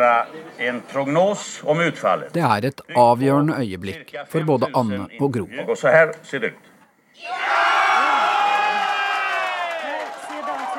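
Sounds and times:
speech: 0:00.0 - 0:07.8
large crowd of EU supporters cheering with whoops and shouts: 0:07.2 - 0:10.7.

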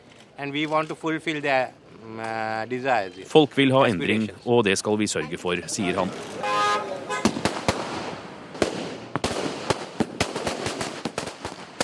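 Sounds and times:
speech: 0:00.4 - 0:06.5
crowd-like noise: 0:02.6 - 0:09.1
brief horn-like toot: 0:05.8 - 0:07.4
improvised firecracker bangs outdoors outside a house: 0:07.1 - 0:11.8.

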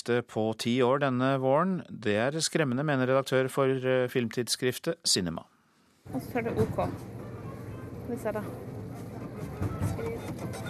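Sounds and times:
speech: 0:00.0 - 0:07.2, 0:08.1 - 0:08.7, 0:09.6 - 0:10.6
cinema ticket printer whirring and clicking: 0:08.6 - 0:10.6.

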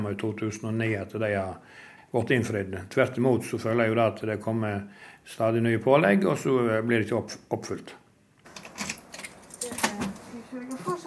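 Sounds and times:
speech: 0:00.0 - 0:08.0
library branch keys jangling: 0:08.5 - 0:10.0.

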